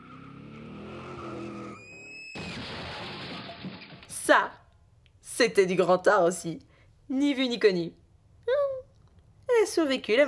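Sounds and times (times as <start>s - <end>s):
car engine roaring: 0.0s - 3.7s
car tires squealing in a skid: 0.0s - 3.9s
speech: 4.3s - 4.6s, 5.4s - 8.0s, 9.7s - 10.2s.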